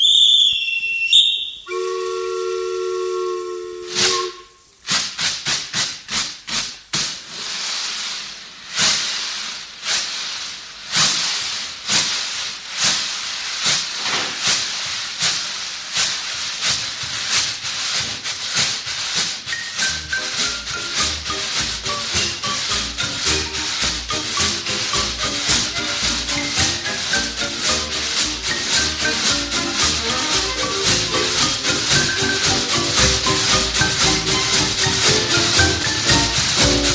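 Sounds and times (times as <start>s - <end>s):
steam train shrill whistle: 0.0s - 4.8s, 19.5s - 36.9s
steam train hissing steam: 0.1s - 36.9s.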